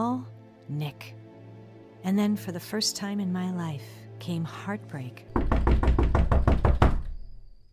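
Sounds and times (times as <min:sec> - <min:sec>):
speech: 0:00.0 - 0:01.2, 0:02.0 - 0:05.4
loud heavy knocking on a door: 0:05.3 - 0:07.2.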